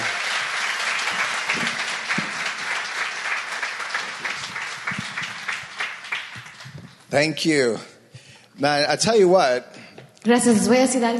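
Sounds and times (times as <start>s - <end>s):
audience applause: 0.0s - 7.3s
speech: 7.1s - 7.9s, 8.6s - 11.1s.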